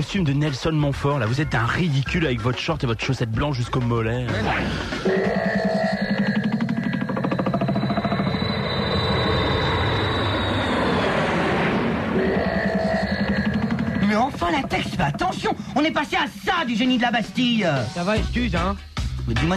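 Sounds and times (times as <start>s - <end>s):
speech: 0.0s - 5.4s, 14.7s - 19.5s
small propeller plane engine droning in flight: 5.7s - 15.8s.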